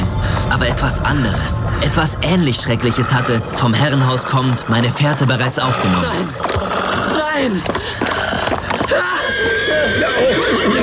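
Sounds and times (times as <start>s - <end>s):
speech: 0.6s - 6.8s, 7.4s - 8.2s
startled horse neighing: 2.8s - 10.8s.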